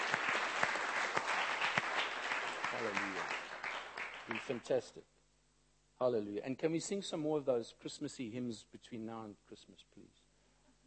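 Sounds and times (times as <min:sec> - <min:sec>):
congregation applauding worship leaders at a church service: 0:00.0 - 0:04.8
speech: 0:02.8 - 0:03.4, 0:04.3 - 0:05.2, 0:06.0 - 0:10.2.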